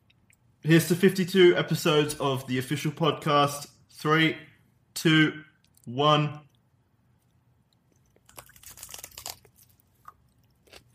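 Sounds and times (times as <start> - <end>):
speech: 0.6 - 6.5
someone biting into and chewing hot food: 5.6 - 10.9.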